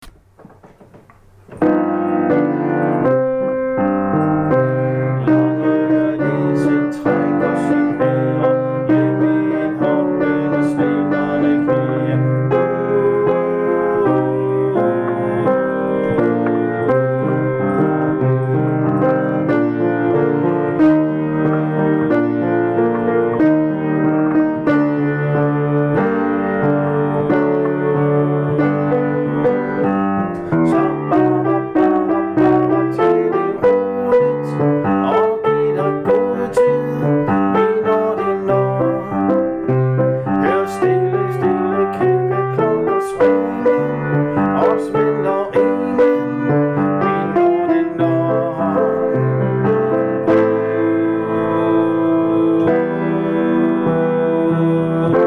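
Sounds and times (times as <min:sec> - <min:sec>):
alto voices singing with accompaniment: 0:00.0 - 0:55.2
musical accompaniment: 0:00.0 - 0:55.2.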